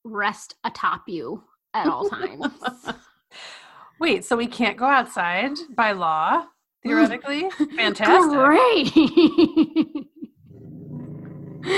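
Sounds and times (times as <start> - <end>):
speech: 0.1 - 9.9
laughter: 1.9 - 3.0, 7.5 - 10.4
upset dog growling: 10.4 - 11.7.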